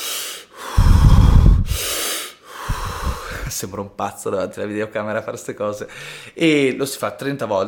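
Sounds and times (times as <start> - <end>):
deep forceful breathing through the mouth: 0.0 - 3.5
speech: 3.6 - 7.6.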